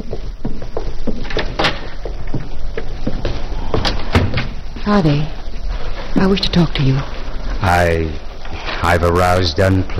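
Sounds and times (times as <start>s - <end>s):
steady low hiss: 0.0s - 9.9s
door opening and closing: 1.2s - 2.0s, 3.7s - 4.7s
speech: 4.9s - 5.4s, 6.1s - 8.2s, 8.8s - 9.9s.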